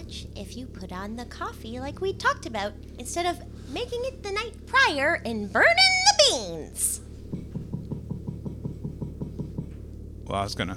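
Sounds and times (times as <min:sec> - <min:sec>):
faint low hum: 0:00.0 - 0:10.7
speech: 0:00.1 - 0:07.0, 0:10.3 - 0:10.7
knocking on a closet door: 0:07.3 - 0:09.8.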